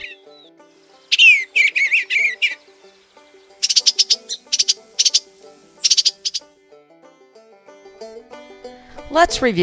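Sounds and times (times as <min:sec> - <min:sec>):
Eastern Bluebird song: 0:00.0 - 0:06.5
faint steady music: 0:00.0 - 0:09.6.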